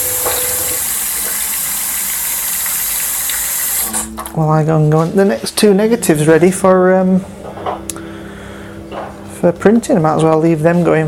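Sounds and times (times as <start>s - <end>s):
running water rinsing excess silver from albumen photographic prints: 0.0s - 4.4s
speech: 4.0s - 7.4s, 9.4s - 11.0s.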